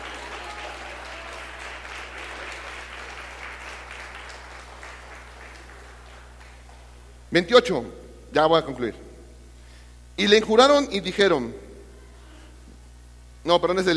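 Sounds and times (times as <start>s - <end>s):
congregation applauding during a church sermon: 0.0s - 7.1s
speech: 7.3s - 9.0s, 10.2s - 11.6s, 13.4s - 13.9s.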